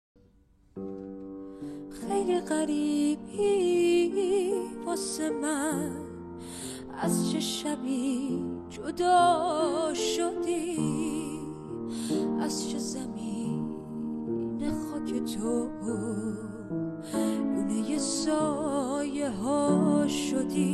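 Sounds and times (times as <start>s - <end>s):
woman singing a song: 1.9s - 20.7s.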